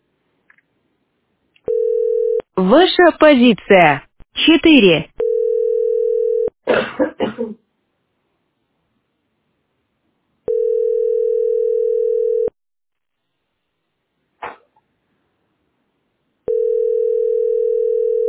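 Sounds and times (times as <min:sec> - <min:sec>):
telephone dial tone: 0:01.7 - 0:02.4, 0:05.2 - 0:06.5, 0:10.5 - 0:12.5, 0:16.5 - 0:18.2
speech: 0:02.6 - 0:05.1, 0:06.7 - 0:07.6
person coughing without covering the mouth: 0:06.7 - 0:07.6.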